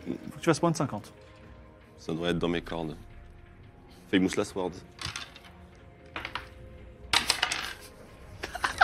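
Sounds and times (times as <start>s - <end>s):
speech: 0.1s - 1.4s, 2.0s - 3.1s, 4.1s - 5.0s
dice rattling and clattering across a hard surface: 5.0s - 5.5s, 6.1s - 7.9s
laughter: 8.4s - 8.8s.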